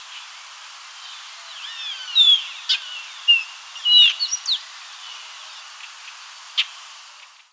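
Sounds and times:
background hiss: 0.0 - 7.5
Baywing Agelaioides badius calling with whistled and chirping notes: 1.6 - 4.6.

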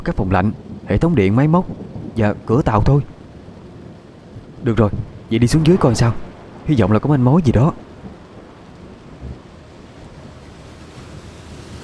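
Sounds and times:
speech: 0.0 - 3.1, 4.6 - 7.8
wind: 0.0 - 11.8
rough sea waves under a stormy overcast sky: 1.7 - 11.8.

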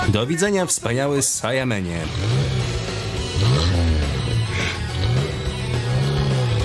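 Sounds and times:
speech: 0.1 - 2.7
car engine revving while driving away: 2.0 - 6.6.

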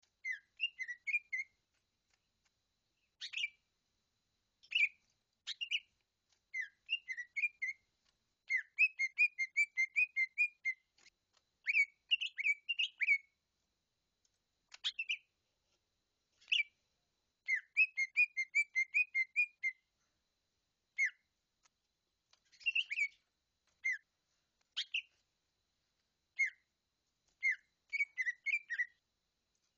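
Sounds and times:
leafbird song of whistled phrases: 0.2 - 1.6, 3.1 - 3.6, 4.6 - 10.9, 11.6 - 13.4, 14.7 - 15.3, 16.4 - 16.8, 17.4 - 19.9, 20.9 - 21.3, 22.4 - 24.1, 24.7 - 25.2, 26.3 - 26.7, 27.4 - 29.0.

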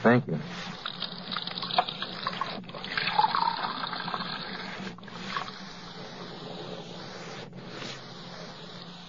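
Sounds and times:
speech: 0.0 - 0.8
water running from a tap into a glass: 0.8 - 4.6.

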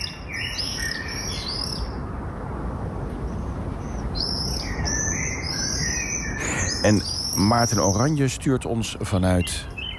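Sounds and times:
common swifts screaming while nesting under roof tiles: 0.0 - 2.0, 3.3 - 8.4
steady hiss: 0.0 - 9.9
speech: 6.8 - 9.7.

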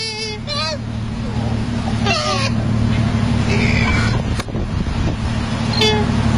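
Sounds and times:
two male koalas fighting and squealing: 0.0 - 2.6, 3.5 - 4.3
constant low rumbling drone: 0.0 - 6.3.

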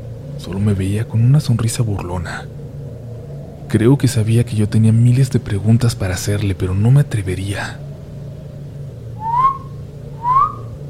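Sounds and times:
low steady hum: 0.0 - 10.8
speech: 0.4 - 2.6, 3.7 - 7.8
person whistling among the trees near a cabin in the woods: 9.2 - 10.6.

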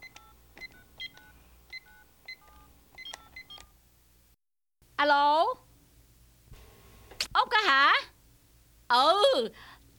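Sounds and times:
dual-tone keypad beeps of a cordless telephone: 0.0 - 3.7
speech: 5.0 - 5.6, 7.6 - 8.1, 8.9 - 9.7.

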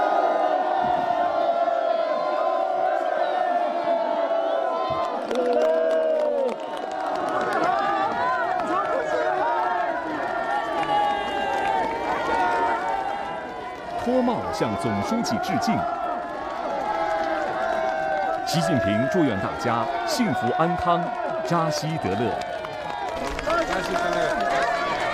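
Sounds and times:
villagers cheering by the roadside in a rural village: 0.0 - 25.1
villagers shouting and whooping: 0.0 - 25.1
continuous crowd murmur: 6.9 - 25.1
speech: 14.5 - 16.0, 18.5 - 22.5, 23.2 - 24.8.

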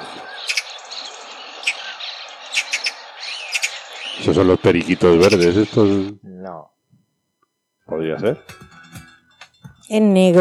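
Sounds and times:
magpie calls played in a bird-guessing game: 0.0 - 4.4, 5.2 - 5.8
speech: 4.2 - 6.7, 7.9 - 8.6, 9.9 - 10.3.

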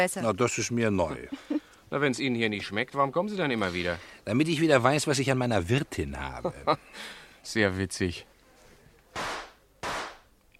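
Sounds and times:
speech: 0.0 - 8.3
gunshots: 9.1 - 10.3.

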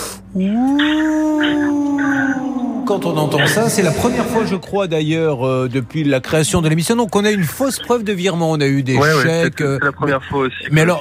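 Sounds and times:
human voice imitating a Tasmanian wolf howl: 0.3 - 4.6
speech: 0.4 - 1.2, 2.9 - 11.0.

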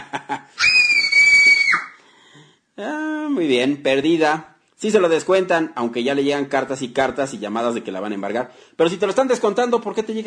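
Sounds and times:
speech: 0.1 - 0.8, 2.8 - 10.2
terrified scream sound effect: 0.6 - 2.0.

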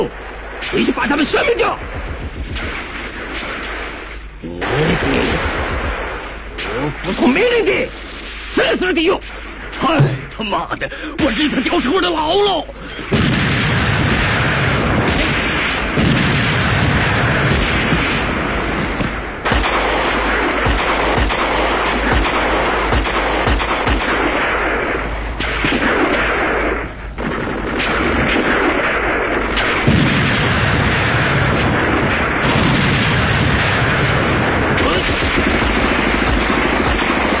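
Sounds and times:
speech: 0.0 - 2.1, 4.4 - 5.5, 6.8 - 13.2
artillery fire and explosions in a battle: 0.0 - 12.1, 12.9 - 37.3.

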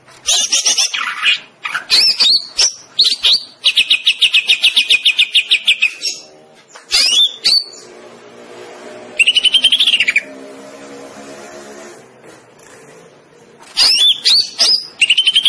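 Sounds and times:
Greater green leafbird song with whistled notes, chirps and trills: 0.2 - 7.9, 9.2 - 10.3, 13.8 - 15.4.

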